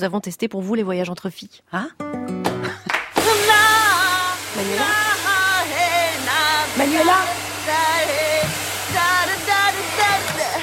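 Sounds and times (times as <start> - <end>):
speech: 0.0 - 2.4
hair dryer blowing: 3.1 - 10.6.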